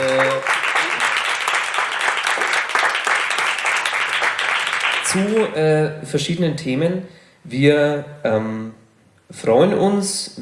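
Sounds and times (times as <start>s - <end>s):
audience applause: 0.0s - 5.5s
speech: 5.1s - 10.3s.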